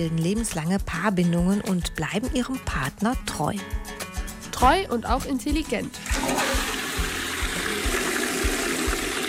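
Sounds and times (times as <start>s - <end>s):
speech: 0.0s - 3.8s, 4.6s - 6.1s
toilet flushing: 6.0s - 9.2s.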